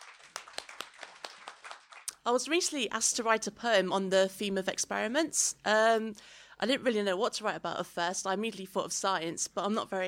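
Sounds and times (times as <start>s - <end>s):
small crowd applauding with scattered handclaps: 0.0s - 2.1s
speech: 2.3s - 10.0s.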